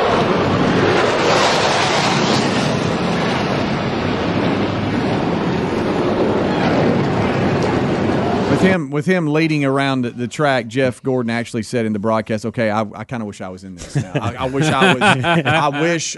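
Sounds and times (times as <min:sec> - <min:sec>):
aircraft flying overhead at Daytona International Speedway racetrack: 0:00.0 - 0:11.1
speech: 0:08.6 - 0:16.1
laughter: 0:13.8 - 0:16.1.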